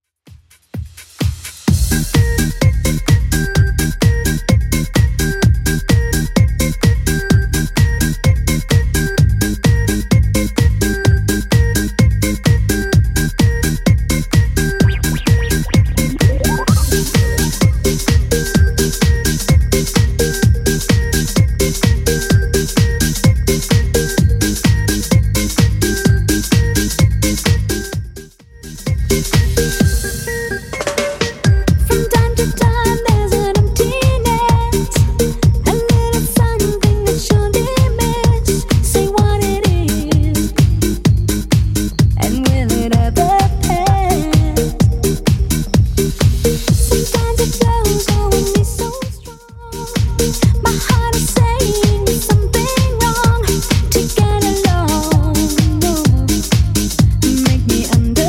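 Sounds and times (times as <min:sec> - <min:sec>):
90s drum loop at 128 bpm: 0:00.3 - 0:58.2.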